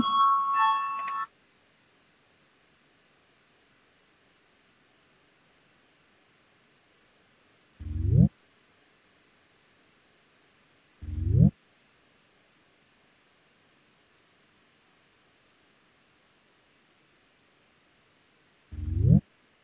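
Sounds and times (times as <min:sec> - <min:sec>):
parliamentary voting call electronic bell tone: 0:00.0 - 0:01.3
room hiss: 0:00.0 - 0:19.6.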